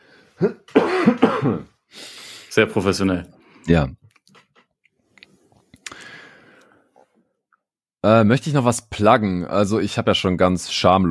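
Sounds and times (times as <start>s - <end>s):
speech: 0.4s - 0.6s, 2.6s - 4.0s, 8.1s - 11.1s
harsh coughing: 0.4s - 1.9s
faint breathy exhale: 5.9s - 7.0s.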